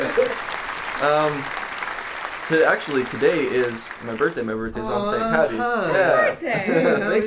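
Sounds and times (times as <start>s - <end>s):
laughter: 0.0s - 0.5s, 4.9s - 7.2s
single person clapping: 0.0s - 4.4s
speech: 1.0s - 1.6s, 2.5s - 7.2s.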